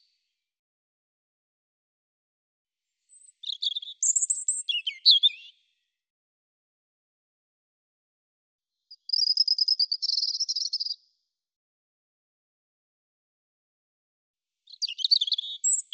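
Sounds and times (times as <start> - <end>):
European robin singing: 3.1 - 5.6, 8.9 - 11.0, 14.7 - 15.9.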